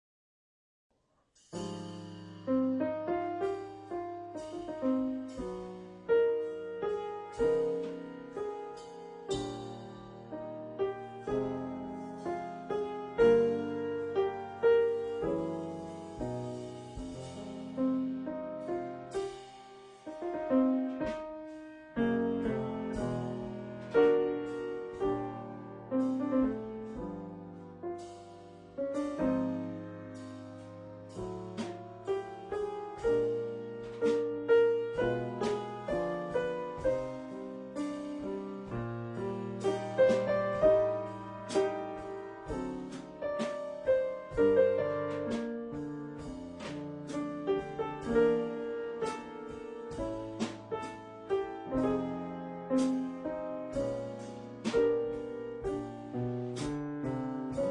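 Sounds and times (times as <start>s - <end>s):
piano: 1.3s - 57.6s
drums: 1.4s - 57.6s.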